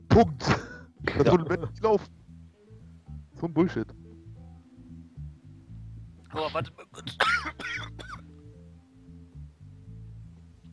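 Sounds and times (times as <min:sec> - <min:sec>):
speech: 0:00.2 - 0:02.2, 0:03.4 - 0:04.0, 0:06.3 - 0:07.8
steady low droning background: 0:00.6 - 0:10.7
harsh raspy coughs: 0:07.0 - 0:08.3.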